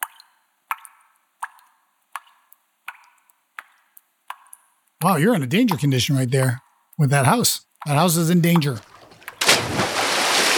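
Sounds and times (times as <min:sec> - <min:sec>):
water dripping from a ceiling leak: 0:00.0 - 0:05.0, 0:07.8 - 0:10.5
speech: 0:05.0 - 0:08.9.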